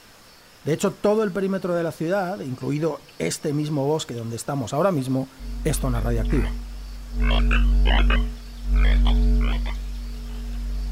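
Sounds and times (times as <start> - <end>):
speech: 0.6 - 9.3
low electrical hum and rumble: 4.8 - 10.8
frog croaking: 5.3 - 10.8.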